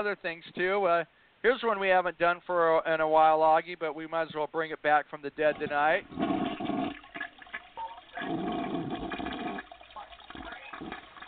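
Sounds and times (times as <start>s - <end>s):
speech: 0.0s - 6.3s
toilet flushing: 6.0s - 11.2s.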